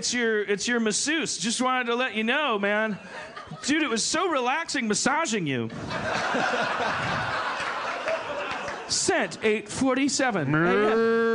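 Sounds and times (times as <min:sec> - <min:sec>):
speech: 0:00.0 - 0:07.4, 0:08.9 - 0:11.3
laughter: 0:02.9 - 0:04.0, 0:05.7 - 0:09.6, 0:10.5 - 0:11.3
cow mooing: 0:10.5 - 0:11.3.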